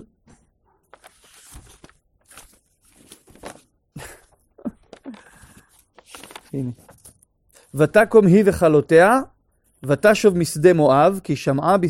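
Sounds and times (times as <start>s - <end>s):
paper pages rustling and flipping: 0.3s - 7.3s
person laughing briefly: 4.0s - 5.3s
speech: 6.6s - 6.9s, 7.8s - 11.8s.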